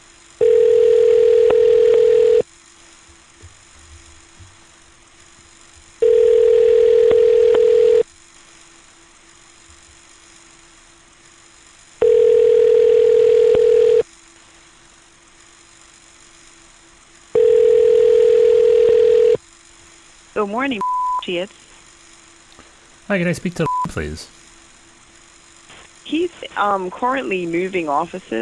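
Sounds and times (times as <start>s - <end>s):
telephone ringback tone: 0.4s - 2.4s, 6.0s - 8.0s, 12.0s - 14.0s, 17.4s - 19.4s
speech: 20.5s - 21.6s, 23.1s - 24.4s, 26.6s - 28.4s.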